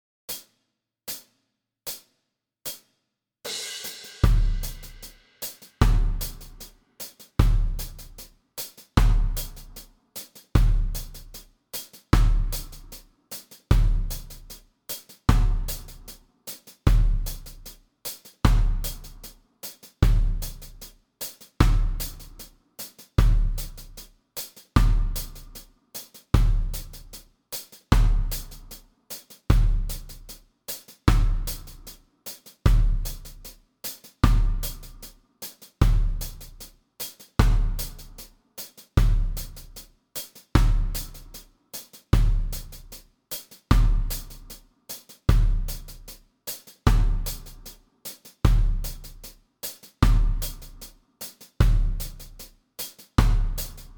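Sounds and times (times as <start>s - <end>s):
bass: 4.2s - 5.1s, 5.8s - 6.7s, 7.4s - 8.3s, 9.0s - 9.8s, 10.6s - 11.4s, 12.2s - 13.0s, 13.7s - 14.6s, 15.3s - 16.2s, 16.9s - 17.8s, 18.5s - 19.4s, 20.0s - 20.9s, 21.6s - 22.5s, 23.2s - 24.1s, 24.8s - 25.7s, 26.4s - 27.2s, 27.9s - 28.9s, 29.5s - 30.4s, 31.1s - 32.0s, 32.7s - 33.6s, 34.2s - 35.2s, 35.8s - 36.7s, 37.4s - 38.3s, 39.0s - 39.8s, 40.6s - 41.4s, 42.2s - 43.0s, 43.7s - 44.6s, 45.3s - 46.2s, 46.9s - 47.8s, 48.5s - 49.3s, 50.0s - 50.9s, 51.6s - 52.5s, 53.2s - 53.9s.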